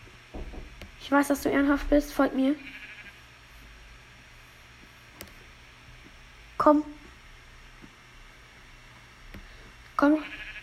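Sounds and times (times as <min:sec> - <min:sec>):
steady hiss of noise: 0:00.0 - 0:10.6
speech: 0:01.1 - 0:02.8, 0:06.6 - 0:07.0
faint sheep bleat: 0:02.5 - 0:03.2, 0:10.0 - 0:10.6.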